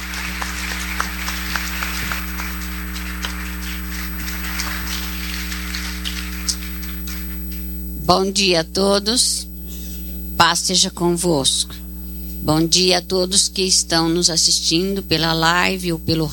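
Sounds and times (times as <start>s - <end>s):
church audience clapping in praise: 0.0s - 7.8s
constant low electrical hum: 0.0s - 16.3s
speech: 8.1s - 9.5s, 10.4s - 11.8s, 12.4s - 16.3s.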